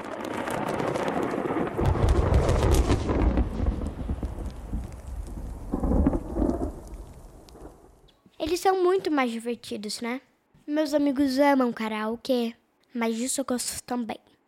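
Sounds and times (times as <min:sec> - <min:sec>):
deep thunder rumbling: 0:00.0 - 0:08.1
steady downpour of rain: 0:00.0 - 0:08.1
speech: 0:08.7 - 0:14.3.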